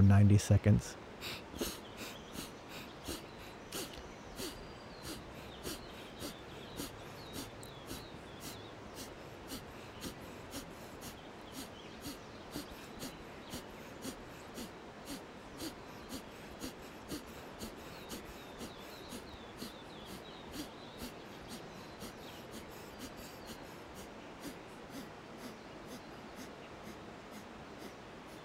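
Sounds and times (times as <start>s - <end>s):
speech: 0.0s - 1.8s
rapid alternate-nostril breathing huffs: 1.2s - 28.4s.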